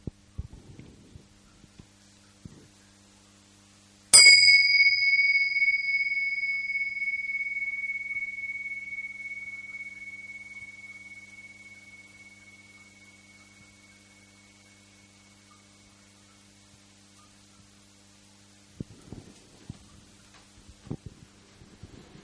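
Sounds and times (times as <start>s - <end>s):
gong ringing: 4.2s - 15.6s.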